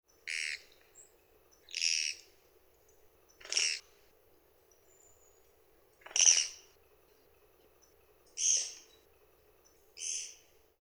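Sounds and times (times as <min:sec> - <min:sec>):
kogera: 0:01.6 - 0:02.3, 0:03.3 - 0:03.8, 0:06.0 - 0:06.7, 0:08.4 - 0:09.0.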